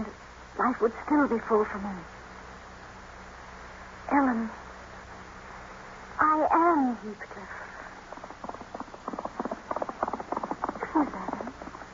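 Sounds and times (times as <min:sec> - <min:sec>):
speech: 0:00.0 - 0:02.2, 0:04.1 - 0:04.6, 0:06.2 - 0:07.6, 0:11.0 - 0:11.3
horse hooves galloping away: 0:08.1 - 0:11.9.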